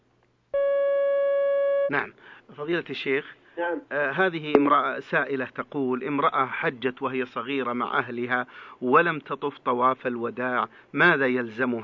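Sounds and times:
telephone line tone as a call comes in: 0:00.6 - 0:01.9
speech: 0:01.9 - 0:11.8.

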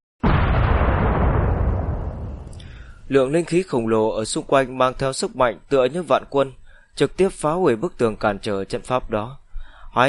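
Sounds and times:
loud explosion: 0:00.2 - 0:03.1
speech: 0:03.1 - 0:09.4.

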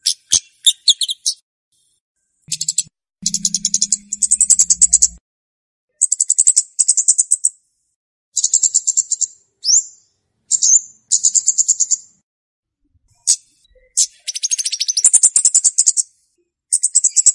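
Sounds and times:
Scarlet-backed flowerpecker song: 0:00.0 - 0:01.4, 0:02.5 - 0:05.2, 0:08.4 - 0:12.1, 0:13.1 - 0:17.2.

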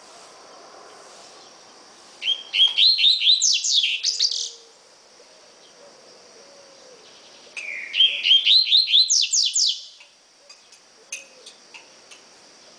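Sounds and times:
steady high hiss: 0:00.0 - 0:12.7
double-collared seedeater song of slurred whistles and buzzy downsweeps: 0:02.2 - 0:04.6, 0:07.6 - 0:10.1.

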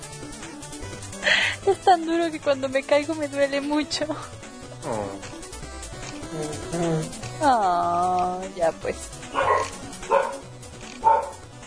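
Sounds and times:
speech: 0:01.6 - 0:05.3, 0:06.3 - 0:09.7
dogs barking: 0:09.2 - 0:11.5.

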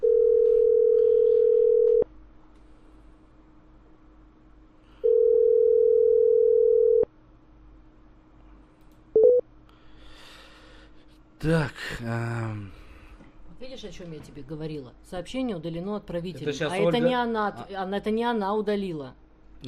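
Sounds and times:
phone ringback tone of an unanswered call: 0:00.0 - 0:02.0, 0:05.0 - 0:07.1
speech: 0:11.4 - 0:12.8, 0:13.6 - 0:19.6.

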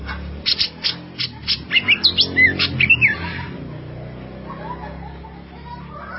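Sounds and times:
Greater green leafbird song with scratchy notes and whistled phrases: 0:00.0 - 0:03.5
laughter: 0:01.0 - 0:01.8, 0:03.1 - 0:06.1.

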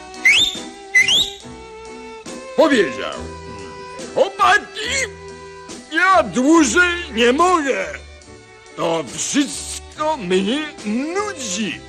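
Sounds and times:
loud sharp finger whistles sliding upward in pitch: 0:00.2 - 0:01.5
speech: 0:02.6 - 0:03.4, 0:04.2 - 0:05.2, 0:05.9 - 0:08.0, 0:08.8 - 0:11.8.

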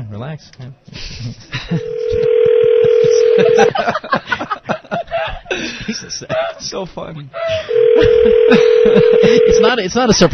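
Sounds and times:
speech: 0:00.2 - 0:04.5, 0:05.6 - 0:10.3
people chuckling: 0:01.0 - 0:06.6, 0:07.4 - 0:09.6
telephone ringback tone on an outgoing call: 0:01.8 - 0:03.8, 0:07.7 - 0:09.7.

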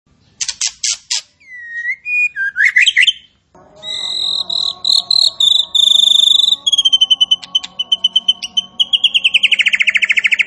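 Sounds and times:
Striated grassbird singing buzzy chattering notes, whistles and warbled phrases: 0:01.4 - 0:10.4
steady high tonal sound: 0:03.6 - 0:10.4.

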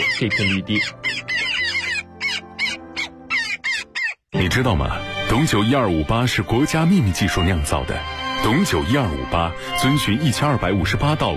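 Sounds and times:
Daurian jackdaws calling in an urban park with lakes and grassland: 0:00.0 - 0:04.3
speech: 0:00.2 - 0:01.2, 0:04.4 - 0:11.3.

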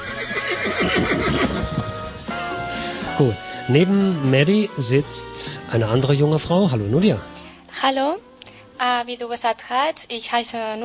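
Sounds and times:
horse neighing on a fenced meadow: 0:00.0 - 0:01.9
speech: 0:00.7 - 0:01.7, 0:03.2 - 0:10.8.

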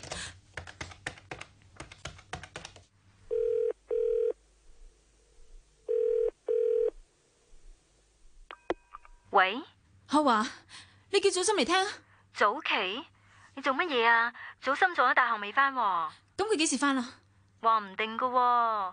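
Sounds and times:
telephone ringing tones: 0:03.3 - 0:04.4, 0:05.9 - 0:07.0
speech: 0:09.4 - 0:18.9.

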